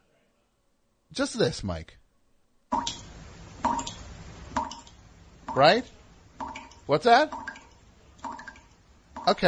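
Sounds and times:
faint noise: 0:00.0 - 0:09.4
speech: 0:01.1 - 0:02.0, 0:02.7 - 0:03.0, 0:05.6 - 0:06.0, 0:06.9 - 0:07.4, 0:09.3 - 0:09.4
water drips: 0:02.7 - 0:09.4.

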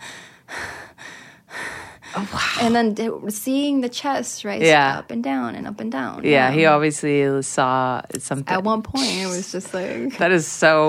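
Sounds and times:
voice imitating labored gasping breathing: 0:00.0 - 0:02.8
speech: 0:02.2 - 0:10.8.

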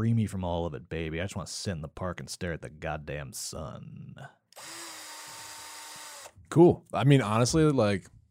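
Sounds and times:
speech: 0:00.0 - 0:04.9, 0:06.5 - 0:08.2
power drill whirring: 0:04.6 - 0:06.4.

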